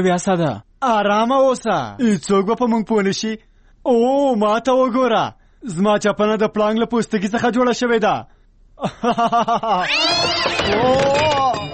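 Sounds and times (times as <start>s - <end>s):
speech: 0.0s - 11.3s
laughter: 8.8s - 11.7s
cat meowing: 9.8s - 11.7s.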